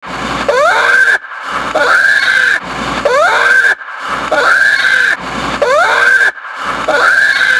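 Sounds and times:
black bear raspy wailing squalls: 0:00.5 - 0:07.5.

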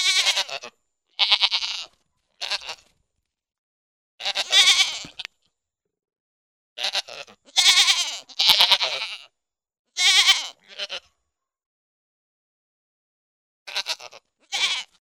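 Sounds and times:
pygmy goat giving long tremulous and short bleats: 0:00.0 - 0:02.9, 0:04.2 - 0:05.3, 0:06.8 - 0:09.3, 0:10.0 - 0:11.1, 0:13.7 - 0:15.0.

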